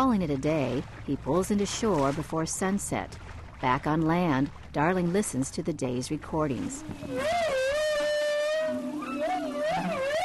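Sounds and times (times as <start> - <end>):
speech: 0.0 - 7.6
low grumbling tone: 6.5 - 10.2
whale song moan: 6.7 - 10.2.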